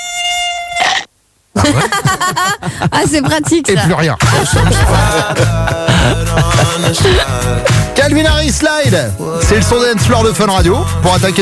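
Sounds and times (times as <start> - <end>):
mosquito buzzing in the dark: 0.0 - 1.1
laughter: 1.6 - 7.8
speech: 1.7 - 11.3.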